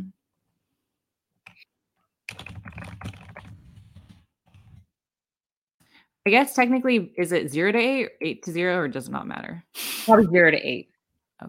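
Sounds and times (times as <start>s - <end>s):
computer keyboard typing: 2.3s - 4.1s
speech: 6.3s - 11.4s.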